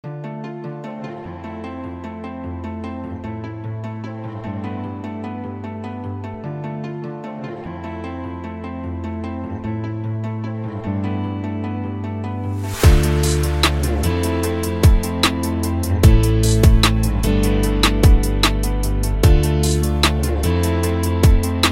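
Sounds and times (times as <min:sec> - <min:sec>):
melodic future bass music: 0:12.4 - 0:21.7.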